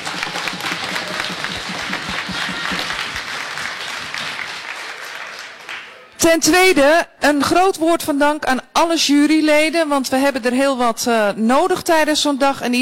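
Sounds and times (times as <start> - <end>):
crowd applauding: 0.0 - 6.2
speech: 6.2 - 12.7.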